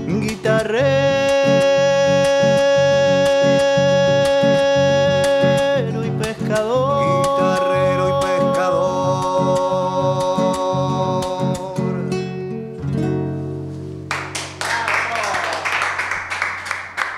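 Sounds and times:
music with a sung or held melody: 0.0s - 14.6s
crowd applauding outside: 14.1s - 17.1s.

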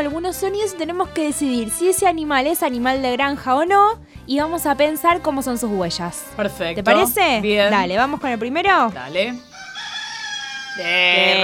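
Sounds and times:
speech: 0.0s - 9.5s, 10.8s - 11.4s
rooster crowing: 9.5s - 11.4s.

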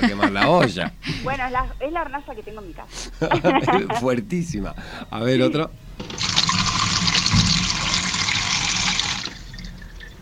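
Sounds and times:
laughter: 0.0s - 1.4s, 3.2s - 4.2s
speech: 0.0s - 6.3s
water gushing from a bathroom tap: 6.0s - 10.2s.

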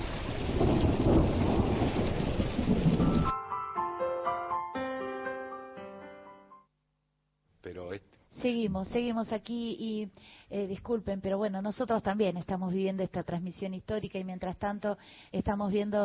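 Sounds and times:
deep thunder rumbling: 0.0s - 3.3s
heavy rain in a thunderstorm: 0.0s - 3.3s
soft melodic notes: 3.0s - 6.7s
speech: 8.4s - 16.0s.

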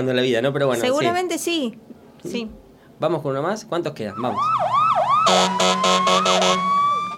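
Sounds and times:
speech: 0.0s - 6.7s
emergency siren wailing: 4.1s - 7.1s
car horn honking: 5.3s - 6.8s.

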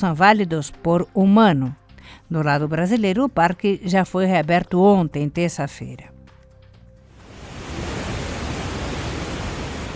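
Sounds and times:
speech: 0.0s - 6.1s
roar of Iguaçu Falls at very high flow: 7.2s - 9.9s.

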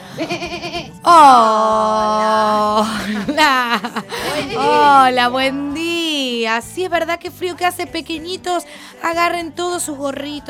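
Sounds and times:
laughter: 0.0s - 1.0s, 2.5s - 5.1s
sheep bleating: 0.1s - 1.1s
speech: 0.2s - 10.4s.

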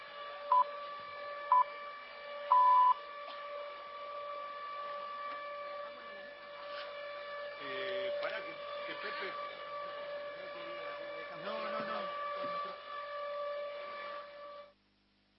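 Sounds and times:
siren steady tone marking the start of the vigil: 0.0s - 14.7s
short electronic beeps: 2.5s - 3.0s.

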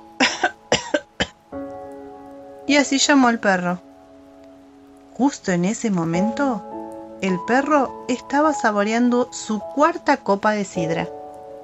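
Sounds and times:
raspy coughs standing for a lamb coughing: 0.2s - 1.4s
speech: 2.7s - 3.9s, 5.2s - 11.2s.

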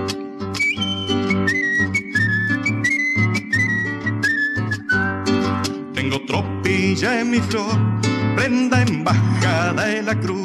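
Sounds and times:
plucked bass rhythm: 0.0s - 10.4s
strummed string accompaniment: 0.0s - 10.4s
person whistling a melody: 0.5s - 5.4s
speech: 7.0s - 10.4s.

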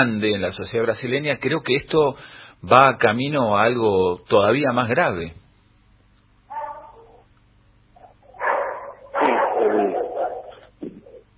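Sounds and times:
speech: 0.0s - 5.4s
several dogs barking and yelping: 6.5s - 7.3s, 8.0s - 10.7s.

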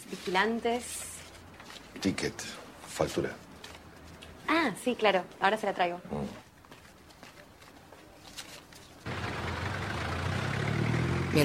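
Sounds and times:
speech: 0.2s - 1.1s, 2.0s - 3.5s, 4.5s - 6.4s
heavy truck engine rumbling: 9.1s - 11.4s.

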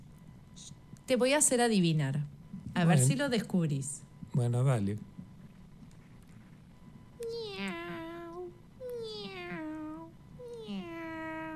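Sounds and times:
speech: 0.6s - 5.1s
cat meowing: 7.2s - 11.5s.

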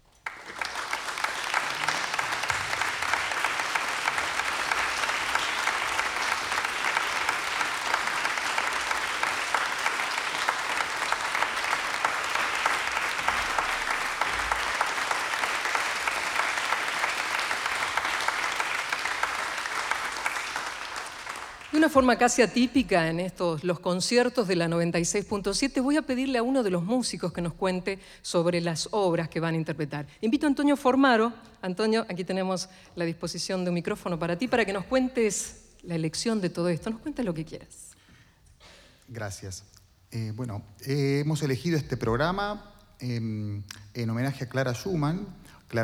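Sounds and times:
large audience applause welcoming performers on stage: 0.0s - 22.7s
speech: 21.8s - 37.9s, 39.1s - 45.8s.

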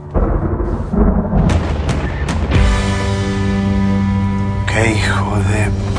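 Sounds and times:
low rolling thunder: 0.0s - 4.5s
speech: 4.8s - 5.9s.

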